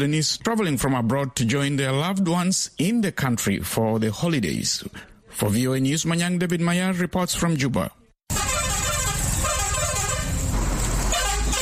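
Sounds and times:
speech: 0:00.0 - 0:08.0
bus engines rumbling at a busy bus park: 0:08.3 - 0:11.6
dense wash of traffic noise: 0:08.3 - 0:11.6
loud sustained horn blasts: 0:08.3 - 0:11.6.

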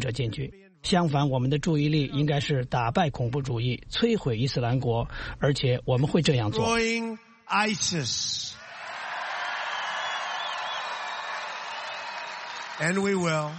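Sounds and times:
man's amplified speech at a rally: 0:00.0 - 0:02.6, 0:05.5 - 0:08.6, 0:12.8 - 0:13.5
speech: 0:00.0 - 0:08.6, 0:12.8 - 0:13.5
supporters cheering at a rally: 0:08.6 - 0:13.5.

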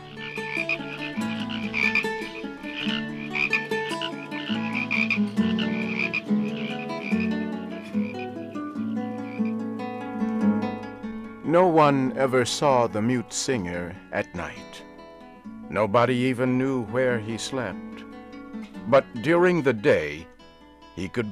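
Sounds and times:
dense chorus of frogs croaking: 0:00.0 - 0:09.6
speech: 0:11.5 - 0:14.8, 0:15.7 - 0:17.9, 0:18.5 - 0:20.3, 0:21.0 - 0:21.3.

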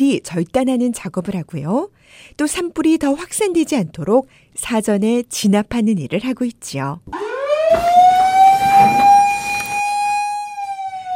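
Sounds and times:
speech: 0:00.0 - 0:07.9
brief noise: 0:00.0 - 0:11.1
wildfire alert siren wailing: 0:07.1 - 0:11.1.

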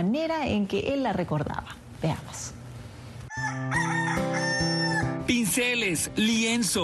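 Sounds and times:
speech: 0:00.0 - 0:02.6, 0:05.3 - 0:06.8
rooster crowing: 0:03.3 - 0:05.2.

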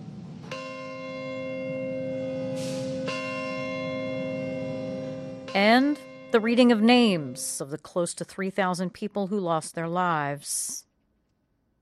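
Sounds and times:
deep memorial church bell tolling: 0:00.5 - 0:07.6
speech: 0:05.5 - 0:10.9.

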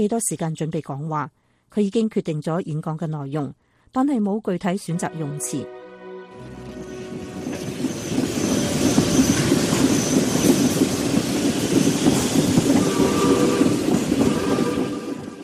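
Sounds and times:
speech: 0:00.0 - 0:05.8
train to Gettysburg rolling on rails: 0:06.4 - 0:15.4.

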